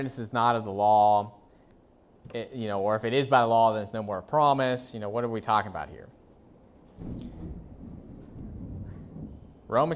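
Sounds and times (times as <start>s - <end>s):
speech: 0.0s - 1.4s, 2.3s - 6.2s, 7.0s - 7.5s, 9.7s - 9.9s
deep thunder rumbling during a thunderstorm: 6.9s - 9.9s.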